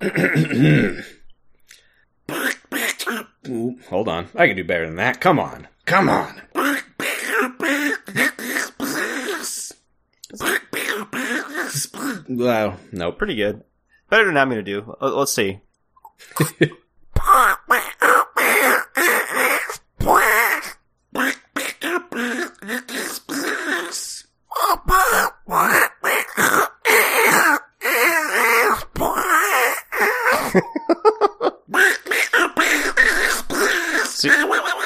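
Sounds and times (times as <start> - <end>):
speech: 0.0 - 1.2, 3.5 - 6.4, 12.3 - 15.6, 16.2 - 16.8
strangled raspy cartoon duck voice impression: 2.3 - 3.6, 5.9 - 12.4, 17.2 - 30.4, 31.7 - 34.8
laughter: 16.2 - 16.8, 30.3 - 31.7.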